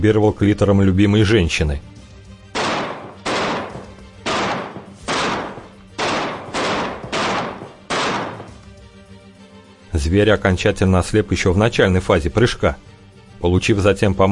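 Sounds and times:
speech: 0.0 - 1.9, 10.0 - 14.3
pistol gunfire fired point-blank at a beast: 2.6 - 8.7.

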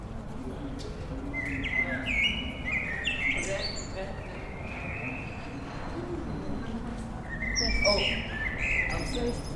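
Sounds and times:
low background noise: 0.0 - 9.5
Common blackbird singing warbled flute-like notes in the evening in Bonn: 1.3 - 5.4, 7.3 - 9.5.

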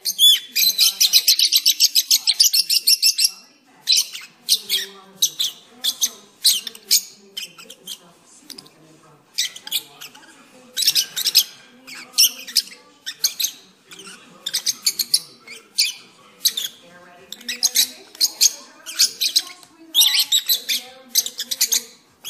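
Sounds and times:
Oriental magpie-robin singing a long varied song of raspy bursts and chattering runs: 0.0 - 22.2.

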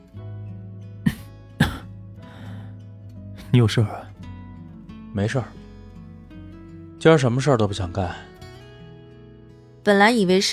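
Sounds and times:
man coughing lightly after smoking a cigarette: 1.1 - 1.9
speech: 3.5 - 4.1, 5.2 - 5.6, 7.0 - 8.3, 9.8 - 10.5.

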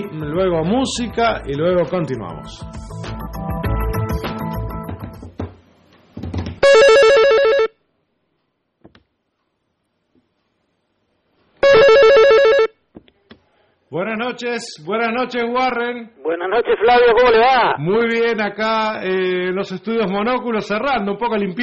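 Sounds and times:
speech: 0.0 - 3.1, 14.0 - 21.6
telephone ringing at the start of a recorded phone call: 6.6 - 7.8, 11.6 - 12.8.

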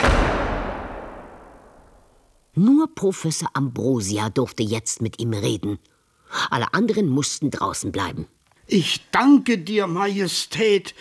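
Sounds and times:
palace door slamming shut: 0.0 - 1.6
speech: 2.6 - 10.9.

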